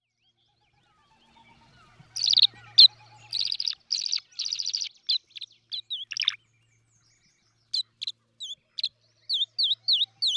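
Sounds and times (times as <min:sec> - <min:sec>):
tree swallow twittering chatter: 0:01.6 - 0:06.4, 0:07.7 - 0:10.3.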